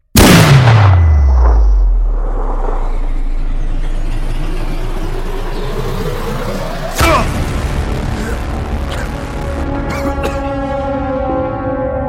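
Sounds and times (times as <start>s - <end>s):
sharp crack: 0.0s - 2.9s
rifle gunshot aimed at a target: 0.1s - 1.6s
low rumble: 0.2s - 12.0s.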